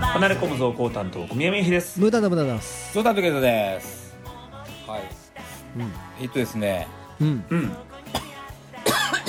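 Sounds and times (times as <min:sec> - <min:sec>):
speech: 0:00.2 - 0:04.0, 0:04.9 - 0:08.2
short voiced vocal sounds from a person: 0:07.1 - 0:08.4
sharp noisy cough from a person: 0:07.2 - 0:09.2.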